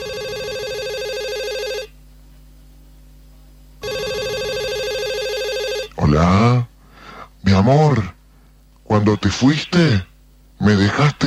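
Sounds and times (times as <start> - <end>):
cell phone ringing with a steady electronic tone: 0.0 - 1.9, 3.8 - 6.0
speech: 6.2 - 6.7, 7.6 - 8.2, 9.0 - 11.2.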